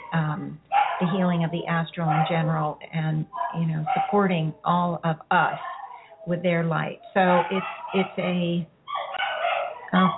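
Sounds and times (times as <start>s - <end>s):
dog barking: 0.0s - 1.4s, 2.0s - 2.5s, 3.3s - 4.2s, 7.2s - 10.1s
speech: 0.1s - 8.7s, 9.9s - 10.1s.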